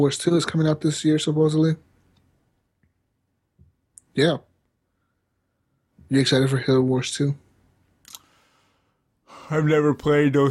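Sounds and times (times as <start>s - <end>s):
speech: 0.0s - 1.9s, 4.2s - 4.5s, 6.1s - 7.4s, 9.5s - 10.4s
breath: 8.1s - 9.6s.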